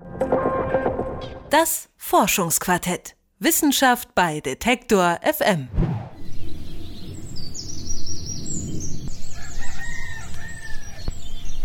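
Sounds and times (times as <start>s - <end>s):
speech: 1.5s - 5.9s
birds chirping in high-pitched calls: 6.2s - 11.6s.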